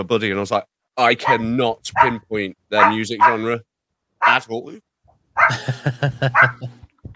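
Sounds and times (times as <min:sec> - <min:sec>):
speech: 0:00.0 - 0:06.8
dog barking in sharp yaps: 0:01.2 - 0:02.2, 0:02.8 - 0:03.5, 0:04.2 - 0:04.4, 0:05.4 - 0:05.6, 0:06.3 - 0:06.6
laughter: 0:05.5 - 0:06.9.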